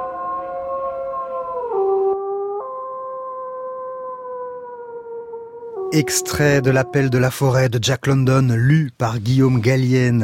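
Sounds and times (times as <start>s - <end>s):
long mournful wolf-like howl: 0.0s - 7.6s
speech: 5.9s - 10.2s.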